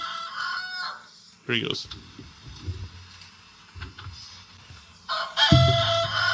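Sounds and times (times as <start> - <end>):
rooster crowing: 0.0 - 1.1, 5.1 - 6.3
speech: 1.5 - 2.4
low clucking: 5.5 - 6.3.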